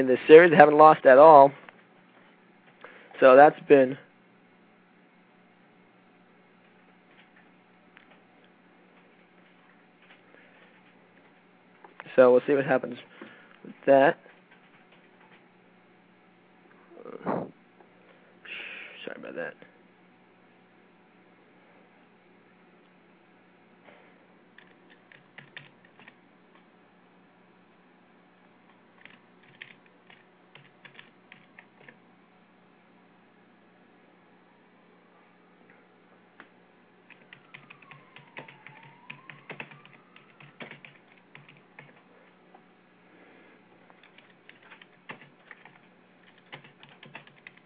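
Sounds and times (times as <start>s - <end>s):
speech: 0.0s - 1.6s, 3.2s - 4.0s, 12.2s - 13.1s, 13.8s - 14.3s, 19.1s - 19.6s
steady low hum: 0.0s - 47.6s
keyboard typing: 24.6s - 26.2s, 29.0s - 32.0s, 37.1s - 42.0s, 44.0s - 47.6s.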